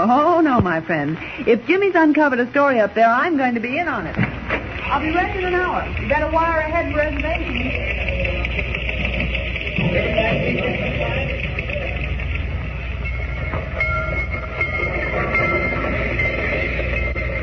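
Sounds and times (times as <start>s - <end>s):
speech: 0.0s - 8.0s
dirty train rolling along rails with metallic rattle: 4.4s - 17.4s.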